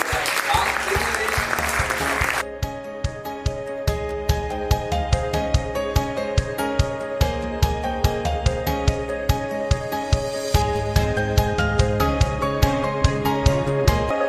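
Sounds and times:
audience applause: 0.0 - 2.4
rhythmic music with a steady beat: 0.9 - 14.1.

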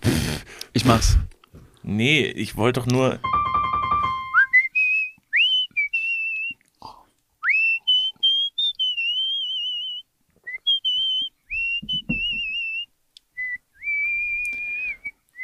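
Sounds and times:
speech: 0.8 - 1.3, 1.9 - 3.4
person softly whistling a slow rock ballad melody: 3.3 - 6.6, 7.4 - 15.4.

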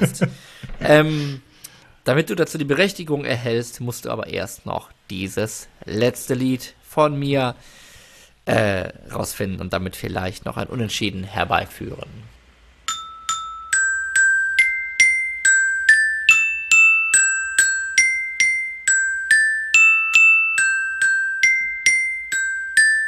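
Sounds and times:
speech: 0.0 - 1.5, 2.1 - 7.8, 8.5 - 12.3
melody played on a glockenspiel: 12.9 - 23.0.

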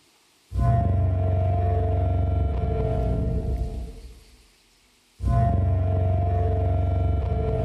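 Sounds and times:
simulated Parasaurolophus call with a trombone-foghorn tone: 0.6 - 3.9, 5.2 - 7.6.

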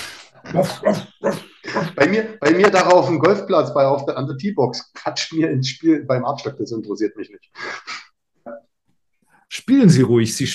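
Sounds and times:
dog barking: 0.5 - 2.0
speech: 0.5 - 8.0, 9.5 - 10.5.

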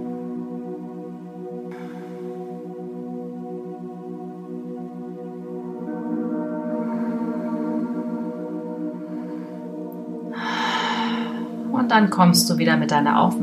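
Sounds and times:
steady sustained droning tone: 0.0 - 13.4
slow deep breaths in and out: 1.7 - 2.7, 6.4 - 11.7
speech: 11.9 - 13.4.

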